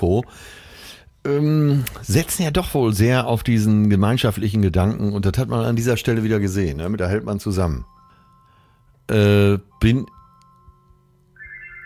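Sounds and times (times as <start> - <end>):
speech: 0.0 - 0.6, 1.2 - 8.0, 9.1 - 10.2
landline telephone electronic ring: 9.7 - 11.8
quieter high tone: 9.7 - 11.8.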